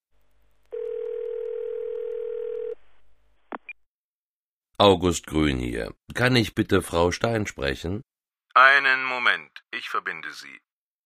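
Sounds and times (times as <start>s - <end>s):
loud steady telephone dial tone: 0.7s - 2.8s
speech: 4.8s - 10.7s.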